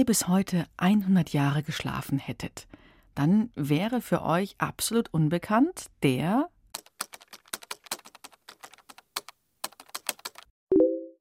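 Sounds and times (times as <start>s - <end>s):
speech: 0.0s - 6.5s
rapid irregular crisp typing on a computer keyboard: 6.7s - 10.5s
short electronic beep: 10.7s - 11.1s.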